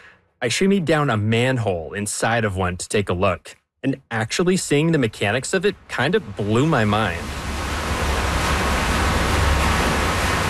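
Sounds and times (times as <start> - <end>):
speech: 0.4 - 7.4
glacier meltwater rushing into an underground reservoir: 4.7 - 10.4.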